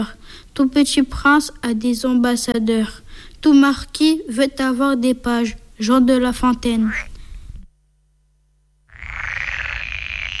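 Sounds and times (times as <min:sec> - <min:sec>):
speech: 0:00.0 - 0:07.1
chorus of croaking frogs: 0:08.9 - 0:10.3.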